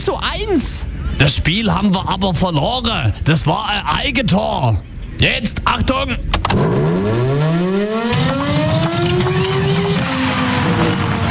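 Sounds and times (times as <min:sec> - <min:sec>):
speech: 0:00.0 - 0:07.2
loud mechanical siren winding up and dying out: 0:06.6 - 0:11.2.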